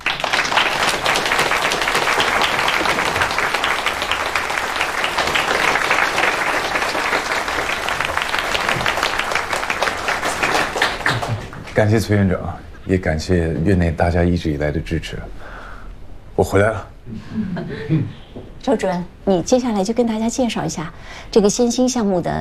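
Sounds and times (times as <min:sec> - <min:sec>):
hospital staff applauding at a morning meeting: 0:00.0 - 0:12.1
speech: 0:11.8 - 0:15.4, 0:16.4 - 0:22.3.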